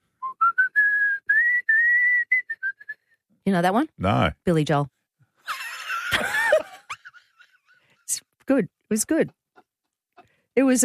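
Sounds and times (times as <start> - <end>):
person whistling a melody: 0.2 - 3.1
speech: 3.4 - 5.0, 8.6 - 9.4, 10.6 - 10.8
laughter: 5.4 - 7.9.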